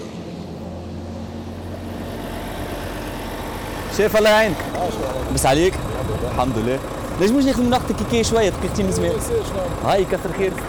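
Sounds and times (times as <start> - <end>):
heavy truck engine idling in a queue of trucks: 0.0 - 10.6
speech: 4.0 - 10.6.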